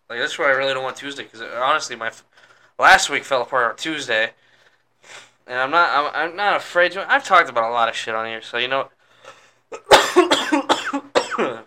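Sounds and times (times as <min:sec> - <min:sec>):
speech: 0:00.1 - 0:04.4, 0:05.0 - 0:10.6
harsh barking coughing: 0:09.7 - 0:11.6.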